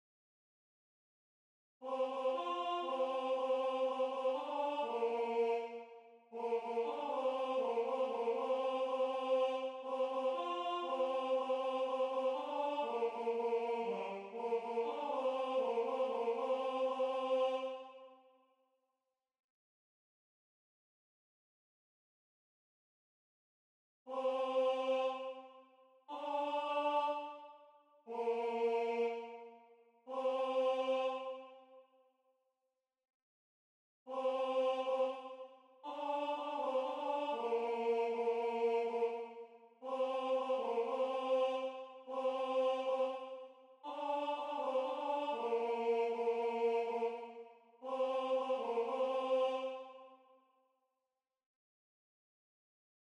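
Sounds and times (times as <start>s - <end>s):
tenor voice singing: 1.8s - 18.0s, 24.1s - 25.5s, 26.1s - 27.5s, 28.1s - 29.5s, 30.1s - 31.6s, 34.1s - 50.1s.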